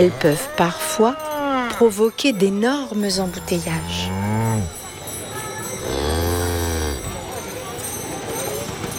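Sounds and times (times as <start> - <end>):
speech: 0.0 - 4.7
cow mooing: 3.2 - 4.8, 5.8 - 7.2.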